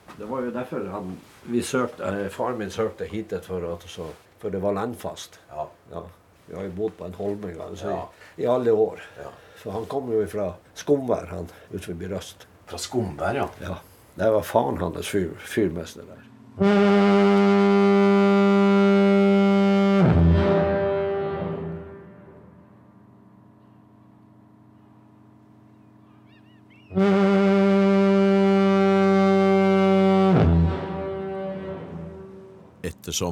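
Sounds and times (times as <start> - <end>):
speech: 0.2 - 17.1
foghorn at Lindesnes lighthouse in Norway blasting: 16.6 - 22.8, 26.9 - 32.8.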